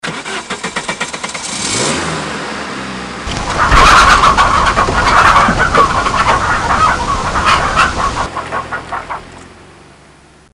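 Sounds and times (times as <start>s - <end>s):
car driving: 0.2s - 10.5s
chickens: 3.3s - 9.4s.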